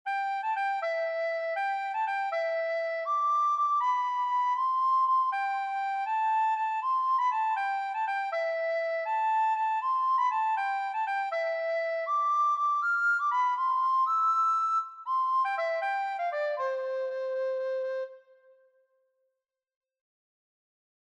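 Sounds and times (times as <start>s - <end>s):
recorder playing a Christmas carol: 0.1s - 18.5s.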